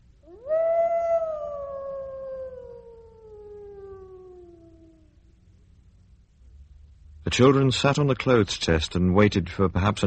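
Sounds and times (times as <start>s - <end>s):
faint low rumble: 0.0s - 10.0s
long eerie wolf howl: 0.2s - 5.2s
speech: 7.3s - 10.0s.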